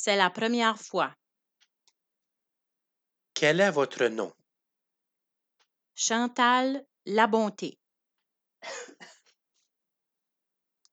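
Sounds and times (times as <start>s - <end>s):
speech: 0.0s - 1.2s, 3.4s - 4.4s, 6.0s - 7.8s, 8.6s - 9.1s
person coughing harshly: 8.6s - 9.3s.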